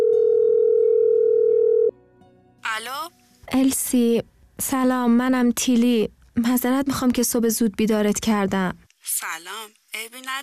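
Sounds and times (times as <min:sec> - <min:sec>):
telephone ringing tone on an outgoing call: 0:00.0 - 0:01.9
speech: 0:02.8 - 0:10.4.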